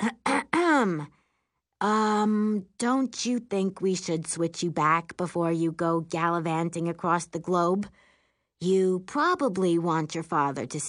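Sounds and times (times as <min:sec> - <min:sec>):
woman clearing her throat: 0:00.0 - 0:01.0
speech: 0:01.8 - 0:08.0, 0:08.6 - 0:10.8.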